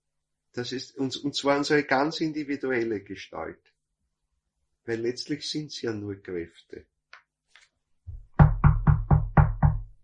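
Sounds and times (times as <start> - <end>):
speech: 0.6 - 3.7, 4.8 - 6.9
knocking on a solid hard surface: 8.1 - 9.9.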